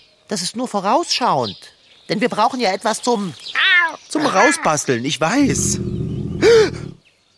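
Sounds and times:
speech: 0.3s - 6.6s
hungry person's stomach growling: 5.5s - 7.0s.

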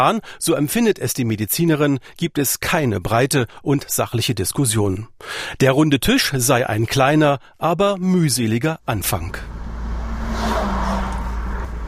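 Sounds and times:
speech: 0.0s - 9.6s
car engine humming heard from inside the car: 9.0s - 11.8s.

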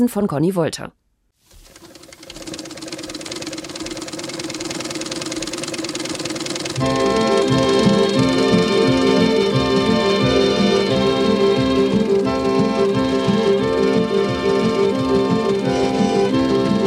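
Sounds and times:
speech: 0.0s - 1.0s
old sewing machine whirring and rattling: 1.4s - 16.8s
sustained musical tones: 6.6s - 16.8s.

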